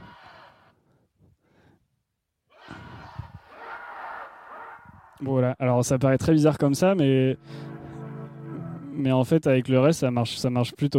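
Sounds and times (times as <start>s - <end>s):
sampled crowd shouting at an art opening: 2.6s - 5.2s
speech: 5.2s - 7.7s, 9.0s - 10.9s.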